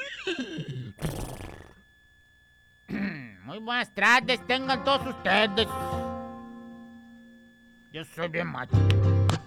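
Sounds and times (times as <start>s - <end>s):
speech: 0.3s - 1.1s, 3.6s - 6.0s, 7.9s - 9.2s
horse snorting: 1.0s - 1.8s.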